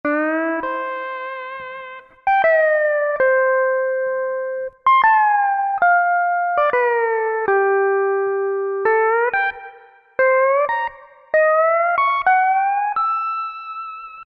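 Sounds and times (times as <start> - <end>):
pedal steel guitar licks: 0.0 - 14.2.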